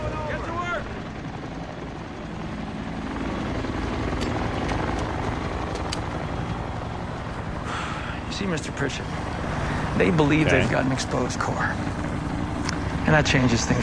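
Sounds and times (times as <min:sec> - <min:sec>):
helicopter taking off: 0:00.0 - 0:13.8
sharp clicks: 0:05.7 - 0:06.1
speech: 0:08.4 - 0:09.3, 0:10.0 - 0:12.0, 0:13.0 - 0:13.8.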